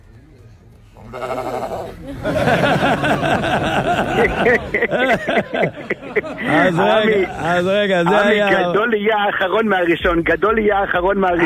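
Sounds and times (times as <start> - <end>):
lively crowd of voices: 0.0 - 11.4
people laughing: 0.0 - 11.4
lamb bleating during a Jewish ceremony redeeming a firstborn donkey: 1.0 - 1.9
speech: 1.1 - 11.4.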